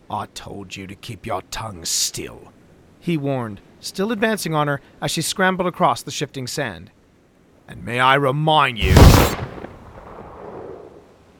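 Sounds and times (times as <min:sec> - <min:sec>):
speech: 0:00.1 - 0:07.0, 0:07.7 - 0:09.4
gunshot fired over shifting sand: 0:08.8 - 0:10.1.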